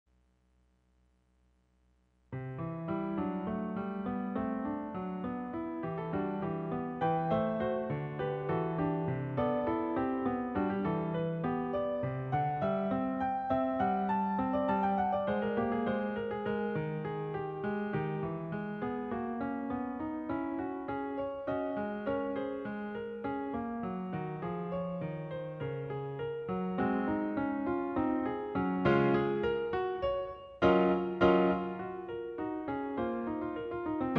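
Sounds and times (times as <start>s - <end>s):
piano prelude: 2.3s - 34.1s.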